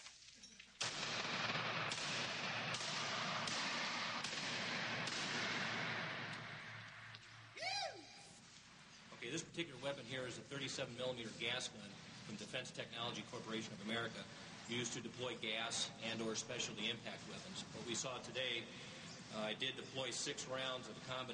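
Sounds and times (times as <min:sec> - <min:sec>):
sting-ball grenade going off in a room: 0:00.8 - 0:06.8
speech: 0:09.6 - 0:21.3.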